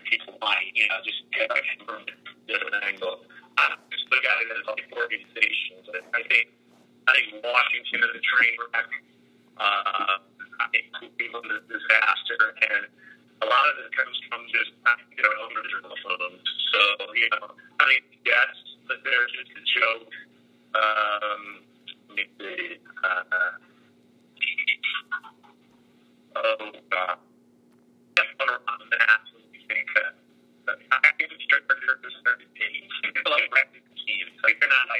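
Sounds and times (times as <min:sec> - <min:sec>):
caller speaking over a tinny phone line: 0:00.0 - 0:06.5, 0:07.1 - 0:09.0, 0:09.6 - 0:20.2, 0:20.8 - 0:23.6, 0:24.4 - 0:25.6, 0:26.3 - 0:27.2, 0:28.2 - 0:34.9
low electrical hum: 0:00.0 - 0:34.9.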